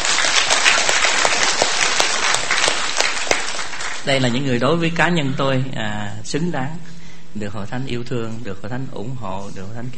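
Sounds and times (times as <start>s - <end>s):
congregation applauding: 0.0s - 4.4s
speech: 4.0s - 9.9s.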